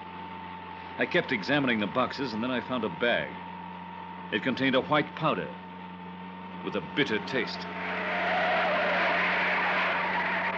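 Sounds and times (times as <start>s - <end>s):
road and tire noise: 0.0s - 10.5s
speech: 1.0s - 3.5s, 4.3s - 5.6s, 6.6s - 7.8s
truck engine rumbling: 6.5s - 10.5s.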